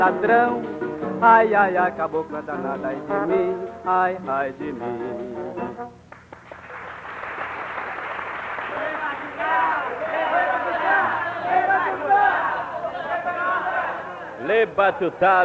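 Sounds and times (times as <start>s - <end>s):
speech: 0.0s - 5.9s, 14.4s - 15.4s
people clapping: 6.1s - 11.8s
crowded cabaret audience shouting and chattering: 8.7s - 15.4s.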